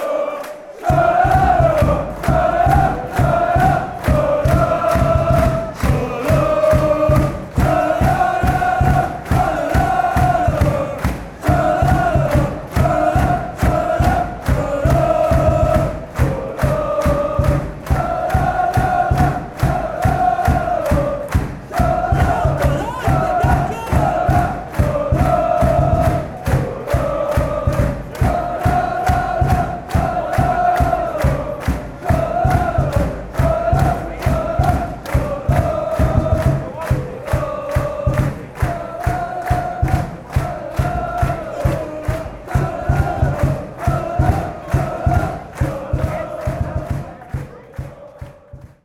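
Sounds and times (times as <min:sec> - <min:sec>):
person chanting tralala: 0:00.1 - 0:48.8.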